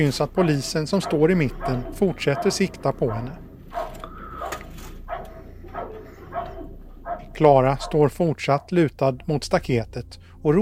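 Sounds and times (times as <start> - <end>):
speech: 0.0 - 3.4, 7.4 - 10.5
low hum: 0.0 - 10.5
police dog barking: 0.4 - 8.7.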